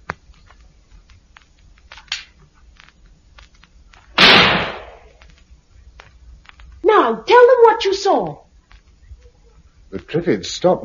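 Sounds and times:
faint clicks and knocks: 0.0 - 4.1, 5.1 - 6.8, 8.2 - 10.2
gunshot fired out of a window into the air: 4.2 - 5.1
speech: 7.1 - 8.4, 9.9 - 10.8.

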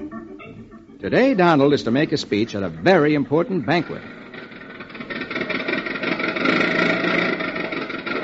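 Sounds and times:
speech: 1.0 - 4.2
car engine running as the car barrels down a highway: 1.7 - 8.2.

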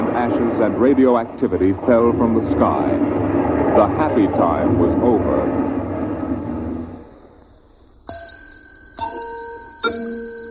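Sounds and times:
low noise rush: 0.0 - 10.4
speech: 0.2 - 5.7
clock chiming: 8.1 - 10.4.

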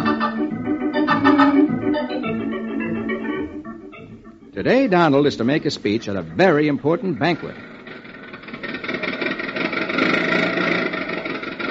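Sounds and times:
car engine driving down the highway: 0.0 - 11.6
speech: 4.6 - 7.7.

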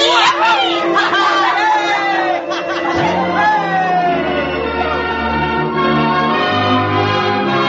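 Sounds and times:
laughter: 0.1 - 7.5
church bells ringing: 2.4 - 7.5.

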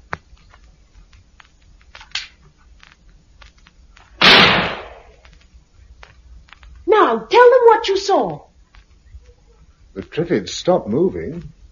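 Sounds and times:
faint clicks: 0.0 - 4.1, 5.1 - 6.9, 8.2 - 10.2
gun fired into the air out of a window: 4.2 - 5.2
speech: 7.1 - 8.5, 10.0 - 11.6.

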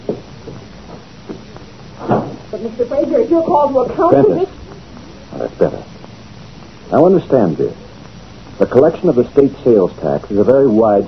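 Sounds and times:
door closing with a single thud: 2.0 - 2.4
speech: 2.5 - 4.6, 5.4 - 5.9, 6.9 - 7.8, 8.6 - 11.0.

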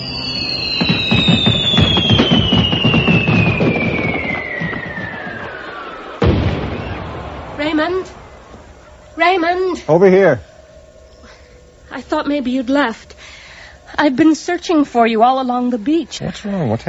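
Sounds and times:
dense rapid crackling firework pops: 0.0 - 9.1
whistling firework rockets: 0.0 - 9.1
sharp loud firework burst: 0.0 - 9.5
speech: 9.2 - 10.5, 12.0 - 13.1, 13.9 - 16.8.

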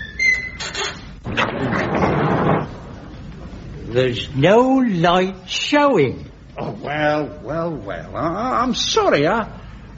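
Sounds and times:
door creaking on its hinges with a thin squeal: 0.0 - 2.8
speech: 3.9 - 9.9.

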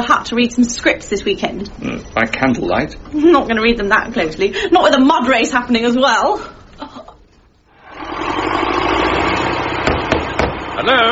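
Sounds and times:
speech: 0.0 - 6.6, 10.8 - 11.1
car engine idling: 7.8 - 11.1.

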